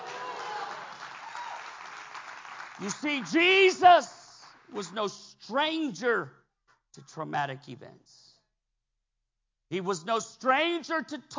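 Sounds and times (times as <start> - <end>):
congregation clapping during a church service: 0.0 - 5.1
speech: 2.8 - 6.4, 7.0 - 8.3, 9.7 - 11.3.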